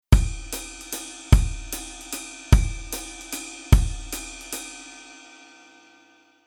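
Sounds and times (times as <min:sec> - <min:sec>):
basic kick drum rhythm: 0:00.1 - 0:04.6.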